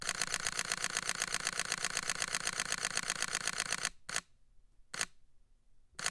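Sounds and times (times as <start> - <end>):
Sony a7R III camera shutter high-speed burst: 0.0 - 4.2.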